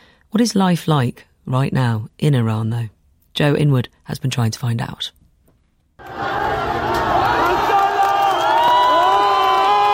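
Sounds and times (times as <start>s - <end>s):
speech: 0.3s - 5.2s
large crowd cheering and shouting at a protest in Tehran Iran: 6.0s - 9.9s.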